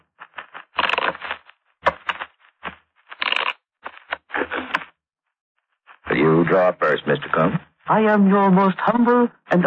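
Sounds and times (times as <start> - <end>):
playing cards being shuffled before a card draw: 0.0 - 4.9
speech: 6.4 - 9.6.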